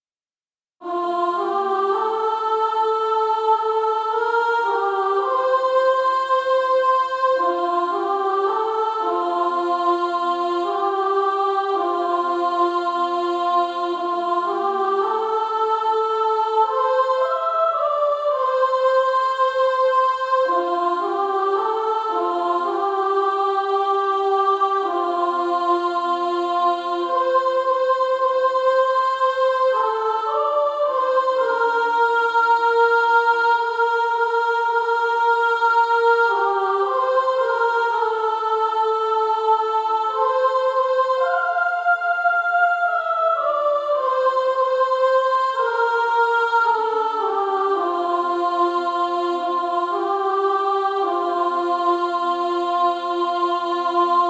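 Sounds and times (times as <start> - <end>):
female choir soprano section singing: 0.8 - 54.2.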